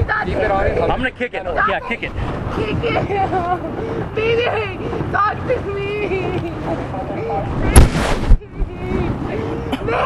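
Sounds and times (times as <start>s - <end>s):
people's voices: 0.0s - 10.0s
wind buffeting on the microphone: 0.0s - 10.0s
speech: 0.2s - 8.3s, 8.9s - 10.0s
gunshot fired at a person during a confrontation: 7.8s - 8.4s.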